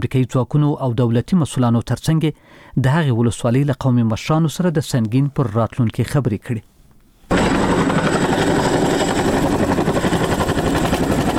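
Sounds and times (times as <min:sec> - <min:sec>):
speech: 0:00.0 - 0:06.7
Chinook military helicopter in flight: 0:07.3 - 0:11.3.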